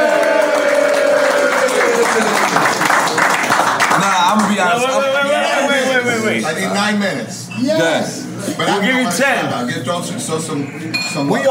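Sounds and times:
loud sustained applause from a large audience: 0:00.0 - 0:04.9
crowd cheering: 0:00.0 - 0:06.0
speech: 0:04.7 - 0:05.2, 0:06.2 - 0:11.4.

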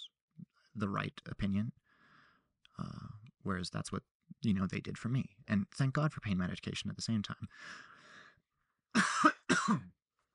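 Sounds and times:
speech: 0:00.8 - 0:01.8, 0:02.8 - 0:08.0, 0:09.0 - 0:10.0
breathy rasp like a throat clear: 0:09.0 - 0:10.0
person coughing: 0:09.0 - 0:10.0.

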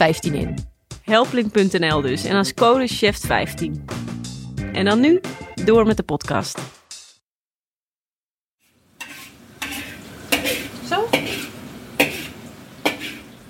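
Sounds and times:
speech: 0:00.0 - 0:04.1, 0:04.7 - 0:06.8
food sizzling in a hot pan: 0:08.6 - 0:13.4.

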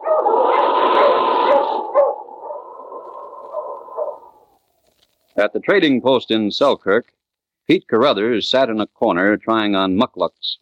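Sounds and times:
dog barking in drawn-out howling calls and whining barks: 0:00.0 - 0:04.4
speech: 0:05.4 - 0:10.6.

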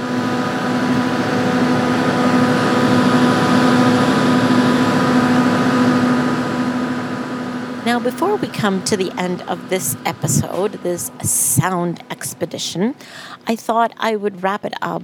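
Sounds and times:
diesel generator producing electricity at an Argentine Antarctic research station: 0:00.0 - 0:14.6
speech: 0:08.1 - 0:15.0.

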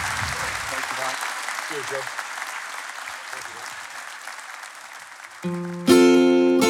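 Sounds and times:
studio audience applause: 0:00.0 - 0:06.6.

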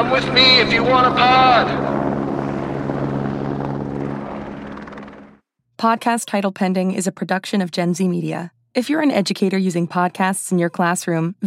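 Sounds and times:
speech: 0:00.0 - 0:02.0, 0:05.8 - 0:11.4
helicopter flying overhead outside an apartment: 0:00.0 - 0:06.1.

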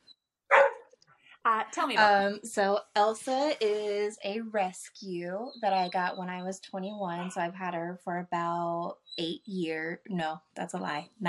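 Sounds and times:
single sharp dog bark: 0:00.5 - 0:00.9
speech: 0:01.4 - 0:11.2.

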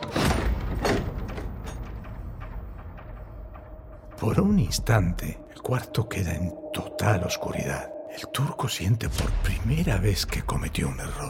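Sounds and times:
room door being pulled shut: 0:00.0 - 0:02.2
speech: 0:04.2 - 0:11.2.

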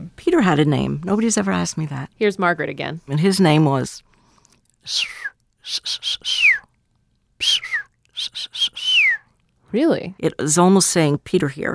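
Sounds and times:
speech: 0:00.2 - 0:04.1, 0:04.8 - 0:06.6, 0:07.4 - 0:08.9, 0:09.7 - 0:11.7
person imitating a dolphin's signature whistle: 0:04.9 - 0:06.7, 0:07.4 - 0:09.3.

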